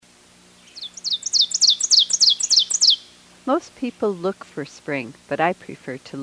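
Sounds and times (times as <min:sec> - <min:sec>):
ovenbird song of quick sharp two-part phrases: 0:00.6 - 0:03.2
speech: 0:03.5 - 0:06.2.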